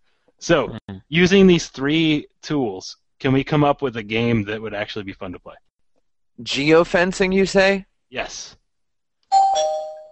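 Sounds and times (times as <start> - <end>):
speech: 0.4 - 5.7, 6.4 - 8.6
two-note ding-dong doorbell chime: 9.3 - 10.1.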